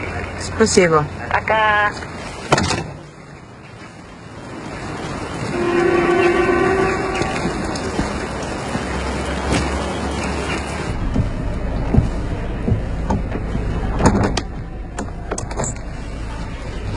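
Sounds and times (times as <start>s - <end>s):
train rolling along the rails: 0.0s - 16.9s
speech: 0.4s - 2.1s
train horn sounding a sustained tone: 5.5s - 8.3s.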